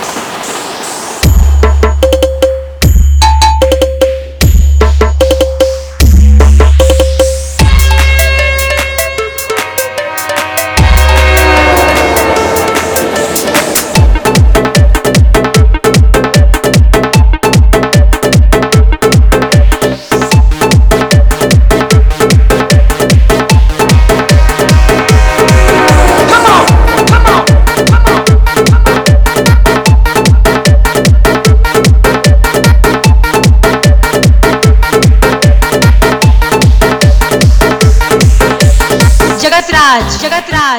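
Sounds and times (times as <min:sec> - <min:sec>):
electronic MIDI instrumental hard mix: 0:01.2 - 0:40.7.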